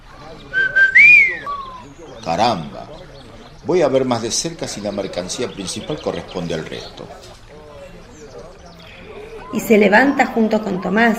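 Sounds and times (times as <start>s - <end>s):
man's long whistle of amazement: 0.5s - 1.9s
speech: 2.3s - 2.8s, 3.6s - 7.3s, 9.5s - 11.1s.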